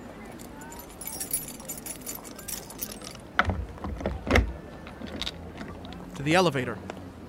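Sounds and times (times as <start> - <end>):
keys jingling and rattling: 0.2 - 4.2
speech: 6.2 - 6.9.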